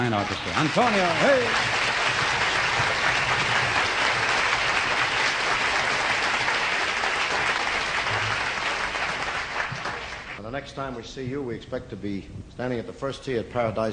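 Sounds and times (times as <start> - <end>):
speech: 0.0 - 1.9, 10.5 - 13.9
audience applause: 0.0 - 10.4.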